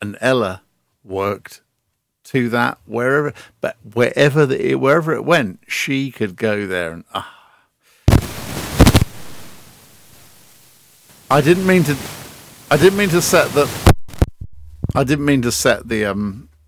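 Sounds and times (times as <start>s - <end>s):
speech: 0.2s - 1.6s, 2.3s - 7.4s, 11.3s - 13.9s, 14.9s - 16.5s
fireworks sound effect with hissing crackling bursts: 8.1s - 14.3s.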